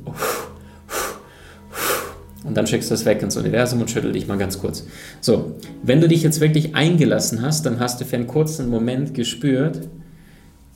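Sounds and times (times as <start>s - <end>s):
person exhaling forcefully: 0.0s - 2.3s
speech: 2.4s - 10.0s.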